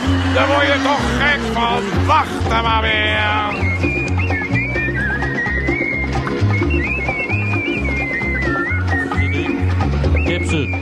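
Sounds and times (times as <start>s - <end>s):
busy rhythmic musical backing with bouncing bass notes: 0.0s - 10.7s
speech: 0.4s - 4.0s
whistled tune: 2.5s - 10.7s.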